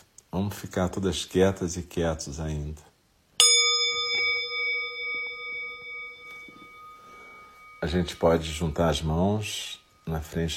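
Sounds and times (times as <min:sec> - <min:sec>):
speech: 0:00.4 - 0:02.9, 0:07.8 - 0:10.5
meditation bell struck in a quiet room: 0:03.4 - 0:10.5.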